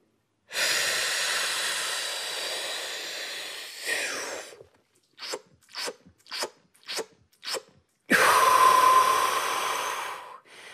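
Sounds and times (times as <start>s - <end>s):
trained freediver taking deep breaths before a spirometer test: 0.5s - 4.6s, 8.1s - 10.7s.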